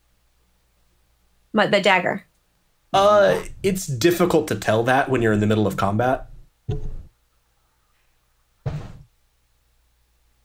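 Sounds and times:
speech: 1.6 - 2.3, 2.9 - 7.0
thumps from a cat bumping into a microphone: 6.2 - 7.1, 8.6 - 9.1.

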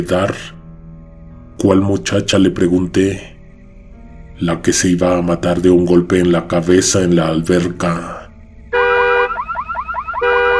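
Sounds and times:
speech: 0.0 - 0.6, 1.6 - 3.3, 4.4 - 8.2
car alarm going off: 8.7 - 10.5.

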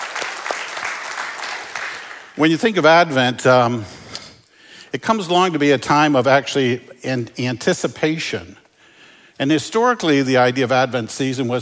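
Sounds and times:
room full of people applauding: 0.0 - 2.4
speech: 2.4 - 4.0, 4.9 - 8.6, 9.4 - 11.6.

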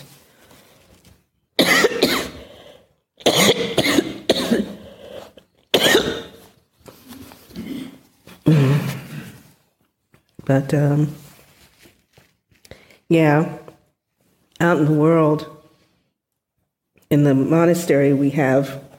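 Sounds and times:
person in a harsh coughing fit: 1.6 - 6.5, 7.5 - 9.4
speech: 10.5 - 11.2, 13.1 - 13.6, 14.6 - 15.5, 17.1 - 18.9.

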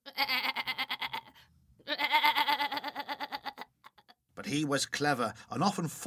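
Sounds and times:
goat bleating: 0.0 - 3.7
speech: 4.5 - 6.0.

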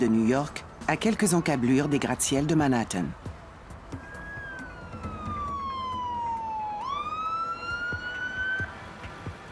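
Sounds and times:
speech: 0.0 - 3.3
city traffic rumble: 0.0 - 9.5
ambulance siren wailing: 4.0 - 8.9.

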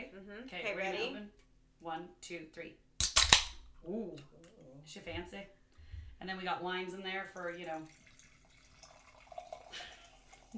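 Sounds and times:
speech: 0.3 - 2.9, 3.8 - 5.6, 6.2 - 8.0
small drips of drink: 7.2 - 10.5
drink pouring into a glass: 7.3 - 10.5.

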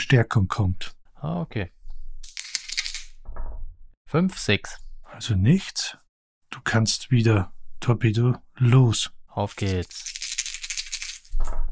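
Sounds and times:
speech: 0.0 - 1.8, 4.1 - 10.2
two small six-sided dice clattering and rolling across a hard surface: 2.2 - 3.2, 9.5 - 11.5.

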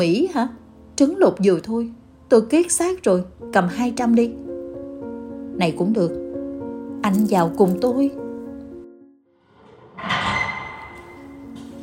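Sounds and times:
speech: 0.0 - 4.4, 5.6 - 6.2, 7.0 - 8.2
iron door sliding open with a scraping grinding rasp: 9.5 - 11.8.

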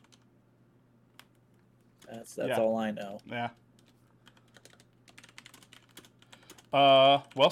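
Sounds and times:
typing on a computer keyboard: 0.0 - 0.2, 3.8 - 7.4
speech: 2.1 - 3.6, 6.7 - 7.4.

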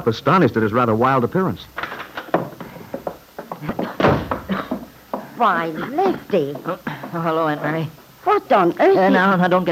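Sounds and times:
speech: 0.0 - 1.8, 5.4 - 9.6
farm kitchen door bursting open: 4.0 - 4.5.

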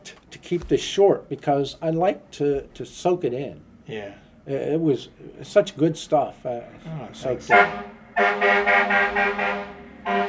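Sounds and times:
speech: 0.5 - 10.2
car horn tooting: 7.3 - 10.2.

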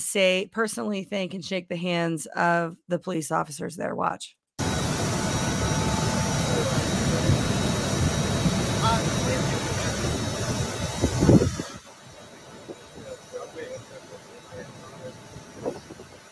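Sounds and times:
speech: 0.0 - 4.4
Rolls-Royce jet engines of a plane roaring: 4.6 - 16.2.

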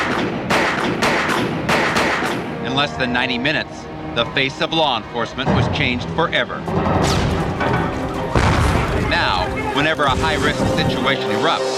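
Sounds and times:
gunfire from a shooter firing down from a university clock tower: 0.0 - 2.4
constant rumbling din: 0.0 - 11.7
speech: 2.8 - 7.4, 9.2 - 11.7.

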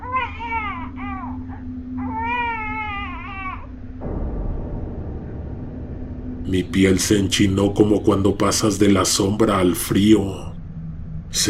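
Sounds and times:
baby crying: 0.0 - 3.8
low steady hum: 0.0 - 11.4
rough rushing noise: 4.0 - 8.8
speech: 6.5 - 10.5.

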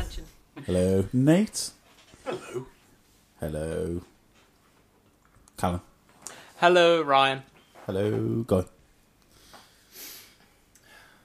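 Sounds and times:
speech: 0.7 - 2.7, 3.4 - 4.1, 5.6 - 5.9, 6.6 - 8.8
sniff through the nose: 9.4 - 10.4.

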